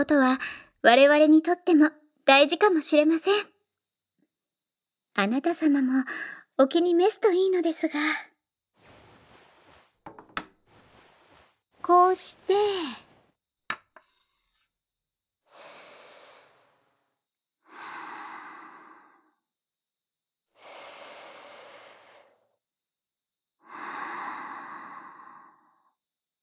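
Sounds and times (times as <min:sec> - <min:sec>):
speech: 0:00.0 - 0:03.5, 0:05.2 - 0:08.3, 0:11.8 - 0:13.0
deep slow inhaling of smoke: 0:08.8 - 0:13.3, 0:15.5 - 0:19.3, 0:20.6 - 0:22.5.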